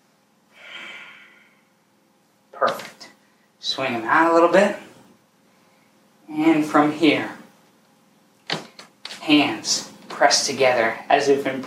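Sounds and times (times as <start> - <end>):
deep breath during a gentle stretching exercise: 0.5 - 1.8
speech: 3.8 - 4.9, 6.4 - 7.4, 9.3 - 11.6.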